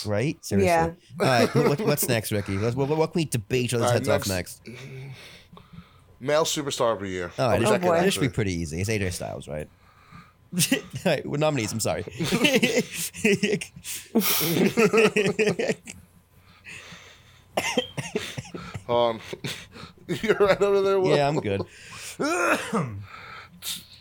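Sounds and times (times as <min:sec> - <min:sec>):
speech: 0:00.0 - 0:05.6, 0:06.2 - 0:09.8, 0:10.5 - 0:16.0, 0:17.6 - 0:18.3, 0:18.9 - 0:23.9
laughter: 0:01.2 - 0:03.0, 0:10.6 - 0:16.0, 0:17.6 - 0:23.0
person coughing: 0:17.6 - 0:18.6, 0:22.0 - 0:23.0.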